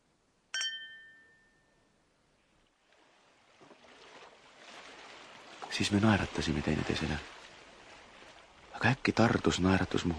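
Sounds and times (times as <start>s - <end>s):
champagne glasses clinking in a toast: 0.6s - 1.8s
speech: 5.8s - 7.5s, 9.0s - 10.1s.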